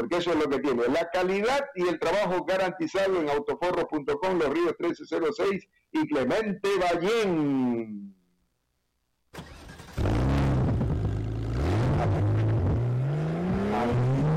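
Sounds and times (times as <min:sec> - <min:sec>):
speech: 0:00.0 - 0:08.2
car engine revving: 0:09.4 - 0:14.3.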